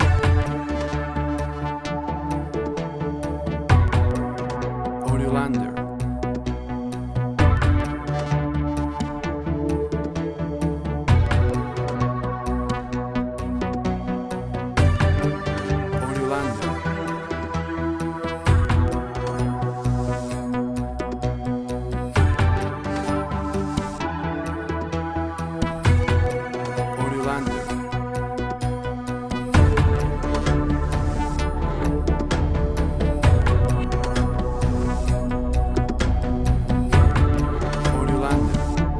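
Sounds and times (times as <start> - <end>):
atmospheric synth tension: 0.0 - 38.9.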